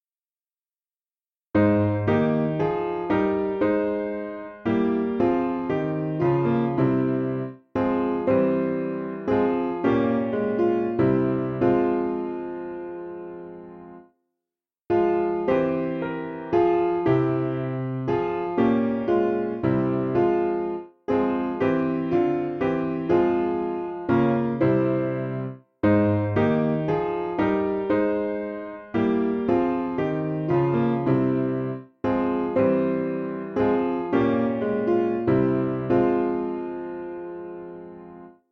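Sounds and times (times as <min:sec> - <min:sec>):
simple piano piece: 0:01.5 - 0:14.2, 0:14.9 - 0:38.4.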